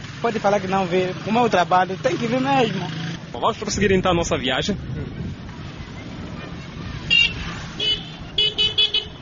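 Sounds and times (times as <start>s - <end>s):
engine and traffic noise: 0.0s - 9.1s
speech: 0.2s - 5.2s
motorcycle horn honking at a roundabout: 7.1s - 9.1s.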